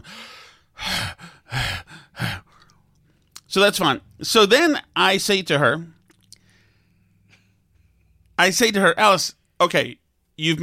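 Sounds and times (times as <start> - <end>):
person imitating a loud breathing machine with heavy breathing: 0.0 - 2.8
speech: 3.6 - 6.0, 8.4 - 10.6.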